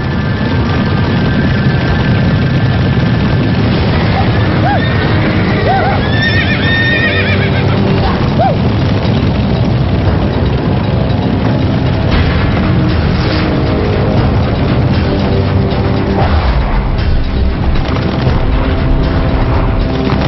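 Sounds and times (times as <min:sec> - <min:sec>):
longhorn cattle stampede pounding hooves: 0:00.0 - 0:20.2
high longhorn cattle cries: 0:04.1 - 0:08.6.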